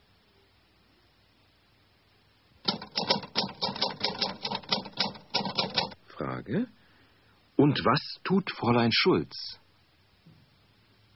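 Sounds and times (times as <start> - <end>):
woman typing on a typewriter: 2.6 - 6.0
speech: 6.5 - 6.8, 7.6 - 9.6.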